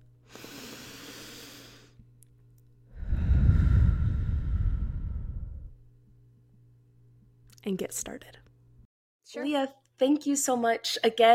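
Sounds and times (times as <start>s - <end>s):
deep breath in and out: 0.2s - 2.0s, 2.9s - 5.8s
speech: 7.7s - 8.5s, 9.3s - 11.3s.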